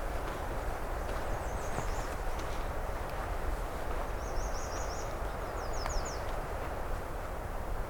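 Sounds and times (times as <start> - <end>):
steady rumbling noise: 0.0 - 7.8
Nashville warbler singing: 1.1 - 2.2, 4.1 - 6.3.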